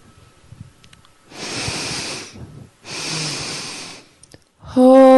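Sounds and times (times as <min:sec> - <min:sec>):
strong nasal sniffs: 0:01.3 - 0:04.2
speech: 0:04.8 - 0:05.0.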